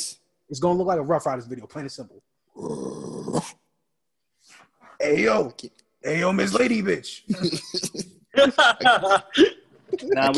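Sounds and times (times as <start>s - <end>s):
speech: 0.0s - 3.6s, 5.0s - 10.3s
dog growling: 2.5s - 3.6s
laughter: 7.3s - 10.3s.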